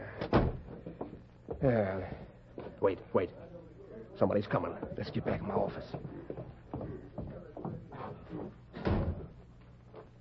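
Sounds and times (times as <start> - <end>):
speech: 1.6 - 2.2, 2.8 - 3.4, 4.2 - 6.1
door swinging shut with a thud: 8.7 - 9.3.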